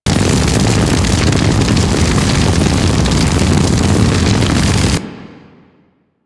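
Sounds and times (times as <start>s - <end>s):
fire beam loop for enemies and abilities: 0.1s - 5.0s.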